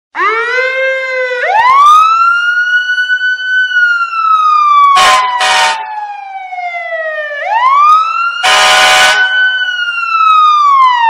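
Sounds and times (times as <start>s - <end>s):
police siren: 0.1s - 11.0s
train horn: 5.0s - 5.8s, 8.4s - 9.5s.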